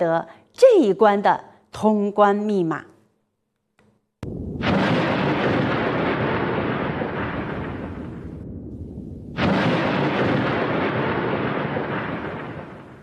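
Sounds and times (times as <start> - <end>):
speech: 0.0 - 2.9
loud rumbling thunderclaps: 4.2 - 13.0.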